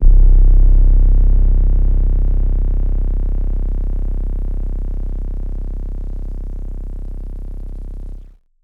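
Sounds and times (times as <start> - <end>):
lo-fi hip hop synth bass one shot in C: 0.0 - 8.3.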